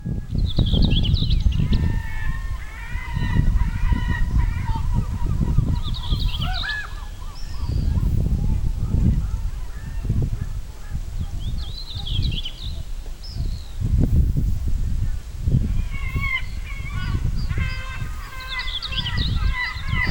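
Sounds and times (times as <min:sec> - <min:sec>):
Sylvia communis rubicola song and subsong: 0:00.0 - 0:20.1
Larus mongolicus calls in the background: 0:01.5 - 0:08.2, 0:15.8 - 0:20.1.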